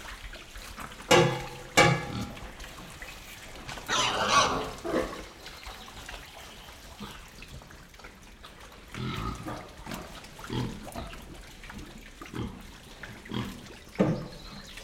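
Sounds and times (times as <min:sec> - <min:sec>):
pigs moving in wet mud inside a shed: 0:00.0 - 0:14.8
pig giving low rough grunts inside a shed: 0:03.8 - 0:05.3, 0:08.8 - 0:09.8, 0:10.4 - 0:11.1, 0:12.3 - 0:13.7.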